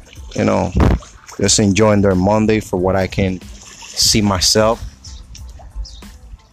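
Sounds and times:
small splashes and trickles: 0.0s - 1.8s, 3.2s - 6.5s
water lapping and dripping at the shore of the Hudson River: 0.0s - 6.5s
speech: 0.4s - 4.9s.

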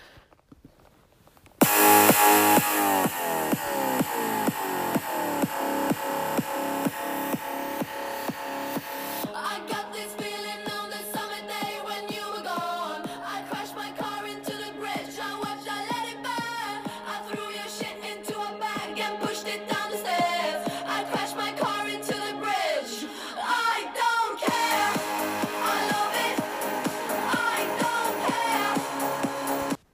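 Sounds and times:
bright upbeat song with a driving beat: 1.6s - 29.8s.

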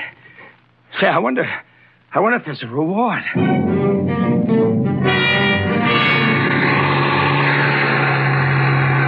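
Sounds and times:
speech: 1.0s - 5.5s
bus engine revving and accelerating on snow-covered mountain roads: 5.2s - 9.0s.

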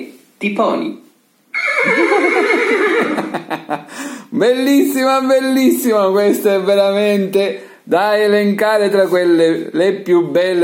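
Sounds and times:
speech: 0.4s - 1.1s, 1.9s - 10.6s
horse whinnying: 1.5s - 3.3s.

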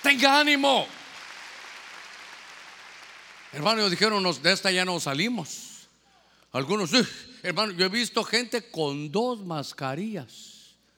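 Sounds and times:
speech: 0.0s - 1.0s, 3.5s - 5.7s, 6.5s - 10.5s
audience clapping at a Christian worship service: 0.0s - 4.6s.

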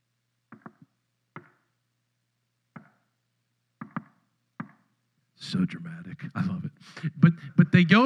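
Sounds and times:
sharp knocks on wood: 3.8s - 4.8s
speech: 5.5s - 8.0s.

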